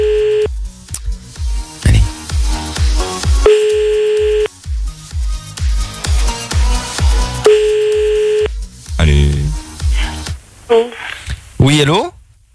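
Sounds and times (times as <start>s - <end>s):
ringing tone of an outgoing telephone call: 0.0s - 0.5s, 3.5s - 4.5s, 7.5s - 8.5s
rhythmic music bed with heavy, thumping beats: 0.1s - 10.0s.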